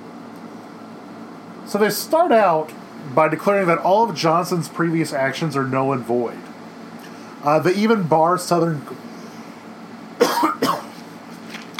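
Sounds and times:
speech: 1.7s - 6.5s, 7.4s - 9.2s
quick harsh coughs: 10.2s - 11.0s.

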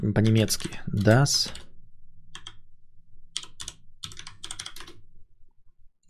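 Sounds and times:
speech: 0.0s - 1.7s
low hum: 0.0s - 6.0s
typing on a mechanical keyboard: 0.3s - 1.7s, 2.4s - 2.6s, 3.4s - 5.0s.

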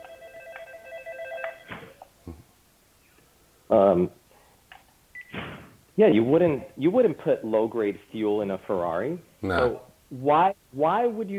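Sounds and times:
phone ringing with a steady electronic tone: 0.0s - 2.0s
speech: 3.7s - 4.2s, 6.0s - 11.3s
brief louder burst of voice: 9.4s - 9.9s.

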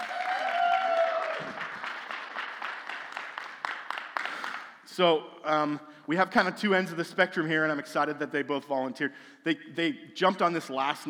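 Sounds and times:
person whooping: 0.0s - 1.7s
audience applauding students coming on stage: 0.0s - 4.8s
speech: 5.0s - 11.0s.

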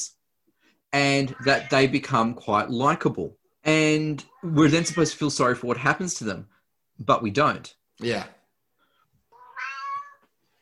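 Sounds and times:
speech: 0.9s - 8.4s
cat meowing: 1.3s - 2.0s, 4.2s - 5.2s, 9.3s - 10.3s.

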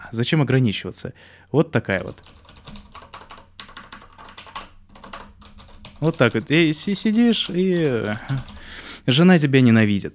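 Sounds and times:
speech: 0.1s - 2.4s, 6.0s - 10.1s
typing on a Kinesis Advantage ergonomic mechanical keyboard: 2.0s - 9.0s.

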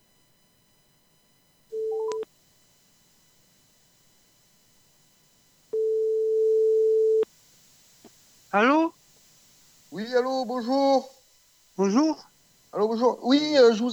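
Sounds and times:
telephone ringback tone while calling about a classified ad: 1.7s - 2.2s, 5.8s - 7.2s
speech: 8.5s - 9.0s, 10.0s - 11.2s, 11.8s - 13.9s.

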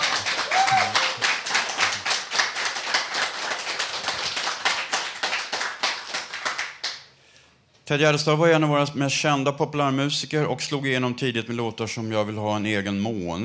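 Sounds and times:
small crowd applauding a guest: 0.0s - 7.0s
speech: 7.9s - 13.4s.

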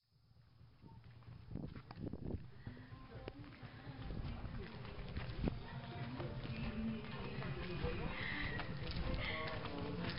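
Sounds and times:
steady low rumble: 0.2s - 10.1s
footsteps tapping on an evening walk through a village: 0.7s - 10.1s
voices in a village at night: 2.5s - 10.1s.

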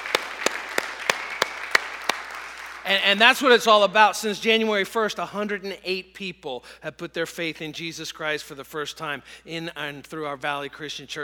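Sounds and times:
audience applause: 0.0s - 2.9s
speech: 2.9s - 11.2s.

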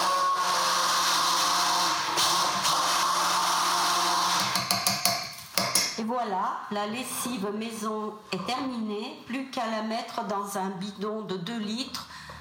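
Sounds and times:
immersion blender mixing homemade laundry detergent: 0.0s - 4.9s
speech: 6.0s - 12.1s.

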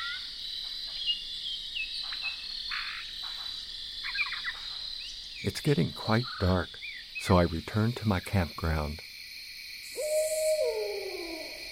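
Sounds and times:
insects chorusing with a steady high buzz: 0.0s - 11.7s
speech: 5.4s - 9.1s
barred owl hooting at a campground at dusk: 9.8s - 11.7s.

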